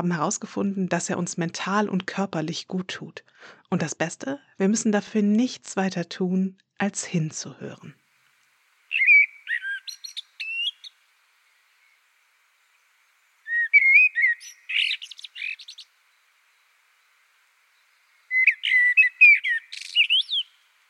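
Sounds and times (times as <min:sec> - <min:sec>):
speech: 0:00.0 - 0:08.0
songbird singing twittering whistles and chirps: 0:08.9 - 0:12.0, 0:12.6 - 0:20.7.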